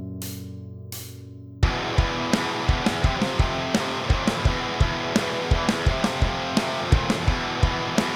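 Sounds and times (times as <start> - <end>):
trial guitar riff: 1.7 - 8.1.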